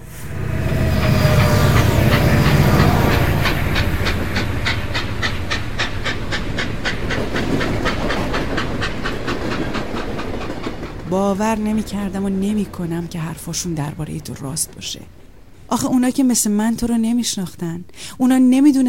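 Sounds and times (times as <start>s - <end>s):
train rumbling past: 0.0s - 17.6s
train wheels clacking over rail joints: 0.5s - 15.6s
speech: 11.4s - 18.8s.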